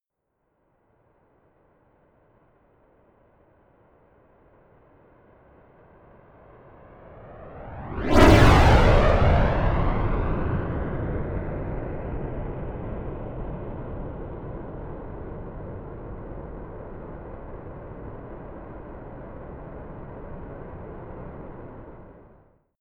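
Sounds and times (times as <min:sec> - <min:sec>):
Rafale military jet flyby left to right fast close: 0:06.9 - 0:12.8.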